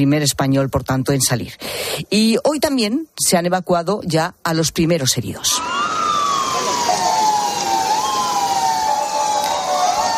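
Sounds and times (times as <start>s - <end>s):
speech: 0.0s - 5.9s
street noise: 0.0s - 10.1s
Red Crescent ambulance sirens wailing: 5.4s - 10.1s.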